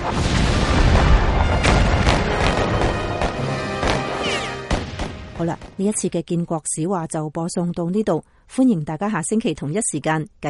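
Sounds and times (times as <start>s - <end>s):
heavy cannon fire from gunboats: 0.0s - 5.7s
speech: 0.1s - 0.4s, 5.4s - 10.4s.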